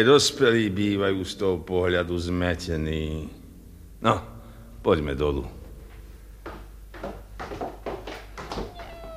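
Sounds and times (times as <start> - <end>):
speech: 0.0 - 3.4, 4.0 - 5.6
kittens mewing: 8.6 - 9.1.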